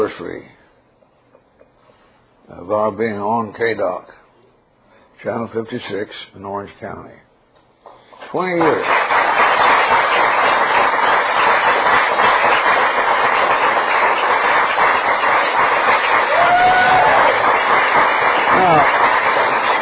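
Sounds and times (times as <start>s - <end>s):
speech: 0.0s - 0.6s, 2.5s - 4.2s, 5.2s - 7.2s, 8.3s - 9.2s
studio audience applauding: 8.3s - 19.8s.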